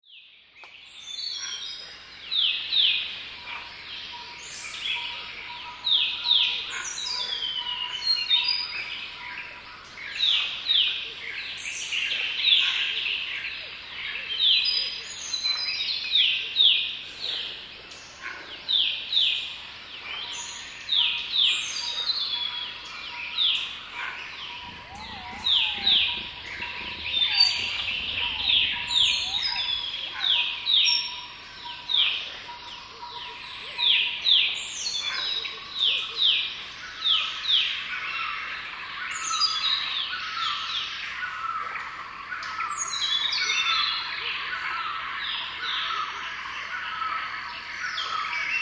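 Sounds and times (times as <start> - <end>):
Thai rainforest ambience: 0.1 - 48.6.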